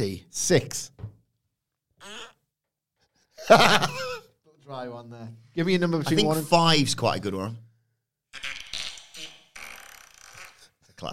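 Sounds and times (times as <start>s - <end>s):
speech: 0.0s - 0.9s, 3.4s - 7.6s
laughter: 3.4s - 4.3s
fart sound effect from a soundboard app: 8.3s - 10.8s.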